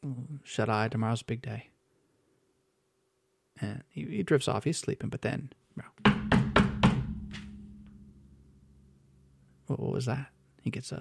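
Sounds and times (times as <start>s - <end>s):
speech: 0.4s - 1.7s, 3.6s - 6.0s, 9.7s - 10.9s
knocking on a wooden door: 6.0s - 7.7s.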